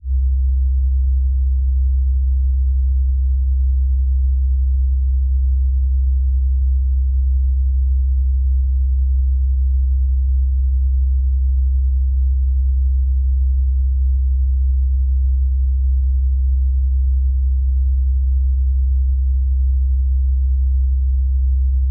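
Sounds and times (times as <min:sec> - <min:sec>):
65 Hz C3 tone: 0:00.0 - 0:21.8.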